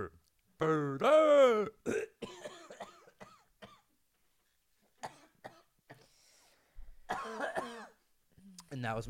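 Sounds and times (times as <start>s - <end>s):
speech: 0.0s - 2.0s, 8.8s - 9.0s
person imitating choking on a cough drop: 0.6s - 3.9s, 5.0s - 6.0s, 7.1s - 8.0s.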